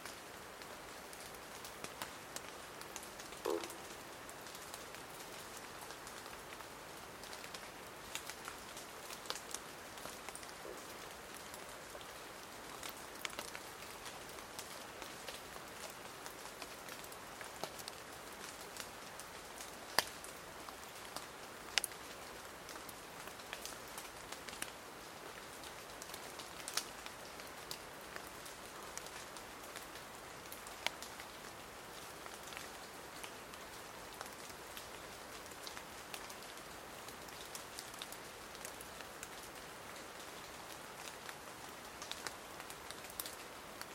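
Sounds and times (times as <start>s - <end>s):
cold rain falling in a Madagascar montane cloud forest: 0.0s - 43.9s
rain drops ticking on leaves in a Madagascar cloud forest: 0.0s - 43.9s.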